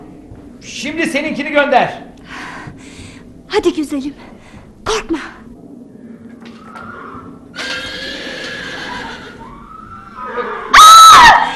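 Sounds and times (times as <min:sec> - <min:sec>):
speech: 0:00.6 - 0:02.1, 0:03.5 - 0:04.3, 0:04.9 - 0:05.4
horse whinnying as it falls off a cliff: 0:06.6 - 0:11.4.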